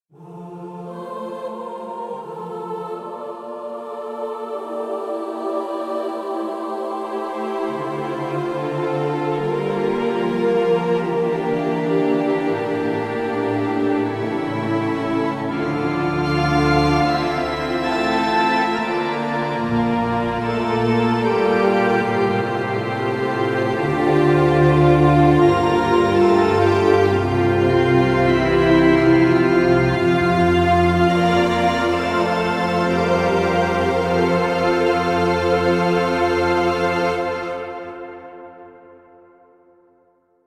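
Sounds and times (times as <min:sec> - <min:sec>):
choir: 0:00.1 - 0:39.6
strings: 0:00.2 - 0:39.0
pipe organ: 0:07.2 - 0:38.1.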